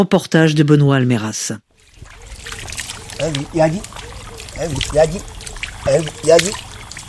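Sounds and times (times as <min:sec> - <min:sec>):
speech: 0:00.0 - 0:01.7, 0:03.2 - 0:04.0, 0:04.6 - 0:06.7
water trickling and splashing: 0:01.7 - 0:07.0
voices speaking or chanting in short bursts: 0:01.8 - 0:07.0.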